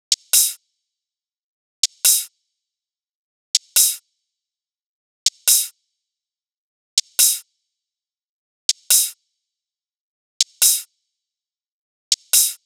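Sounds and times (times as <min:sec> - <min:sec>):
hi-hat loop at 140 BPM with sway: 0:00.1 - 0:00.6, 0:02.0 - 0:02.3, 0:03.7 - 0:04.0, 0:05.4 - 0:05.7, 0:07.2 - 0:07.4, 0:08.7 - 0:09.2, 0:10.4 - 0:10.9, 0:12.1 - 0:12.6.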